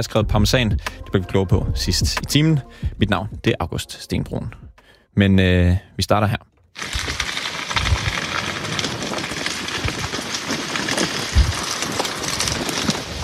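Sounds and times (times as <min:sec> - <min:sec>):
low thumps: 0:00.0 - 0:04.9
speech: 0:00.0 - 0:07.1
burning forest floor crackling south of Paris France: 0:06.8 - 0:13.2.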